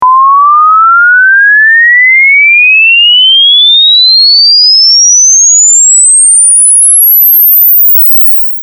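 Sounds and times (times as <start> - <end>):
exponential test tone sweep from 1000 to 20000 Hz: 0.0 - 8.6.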